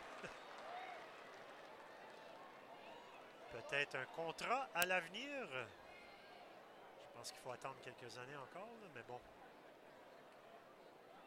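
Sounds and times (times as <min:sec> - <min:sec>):
stadium crowd at a baseball game applauding a catch: 0:00.0 - 0:05.0
speech: 0:03.7 - 0:05.8, 0:07.2 - 0:09.4.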